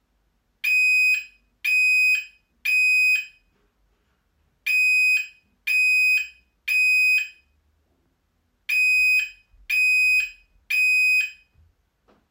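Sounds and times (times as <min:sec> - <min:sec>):
smoke alarm beeping: 0:00.6 - 0:03.5, 0:04.7 - 0:07.5, 0:08.7 - 0:11.6.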